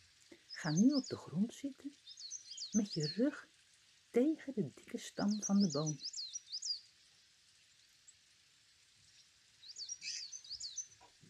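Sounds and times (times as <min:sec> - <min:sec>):
sparrows chirping: 0:00.0 - 0:03.6, 0:04.2 - 0:07.3, 0:09.0 - 0:11.2
speech: 0:00.6 - 0:02.1, 0:02.7 - 0:03.5, 0:04.1 - 0:06.2.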